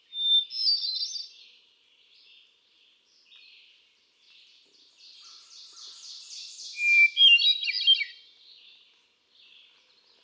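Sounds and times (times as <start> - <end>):
male hermit thrush singing at Quabbin Park, Ware, Massachusetts, USA: 0.0 - 1.4, 5.1 - 8.2.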